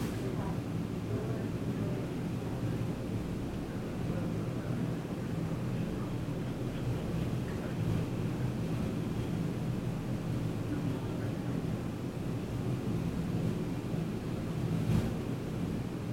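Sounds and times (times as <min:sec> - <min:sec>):
faint office chatter: 0:00.0 - 0:12.8
heavy office air conditioner roaring: 0:00.0 - 0:16.1.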